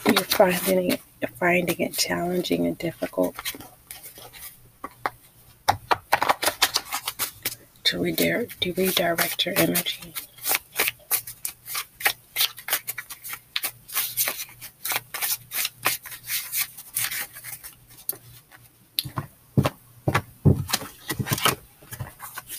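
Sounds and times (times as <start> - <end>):
deck of cards being shuffled: 0.0 - 1.0, 3.0 - 5.2, 5.9 - 7.6, 8.4 - 19.2, 20.6 - 22.5
speech: 0.2 - 3.8, 7.9 - 10.3.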